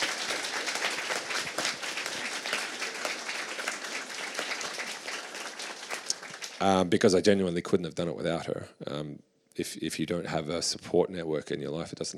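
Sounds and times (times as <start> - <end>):
audience applauding: 0.0 - 6.8
speech: 6.6 - 12.1.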